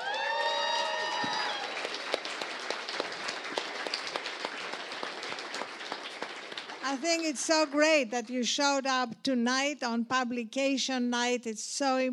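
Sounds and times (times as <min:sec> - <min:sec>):
high whoop or whistle of cheering: 0:00.0 - 0:01.9
crowd applause at a book publication-night event: 0:00.0 - 0:07.7
speech: 0:06.9 - 0:12.1.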